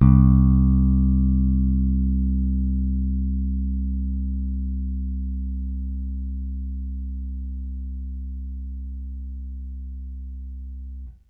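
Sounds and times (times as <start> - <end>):
plucked bass notes: 0.0 - 11.2.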